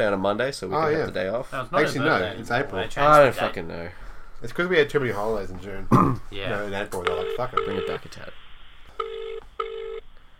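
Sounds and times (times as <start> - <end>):
speech: 0.0 - 8.5
telephone ringing electronically: 7.0 - 8.1, 8.9 - 10.0.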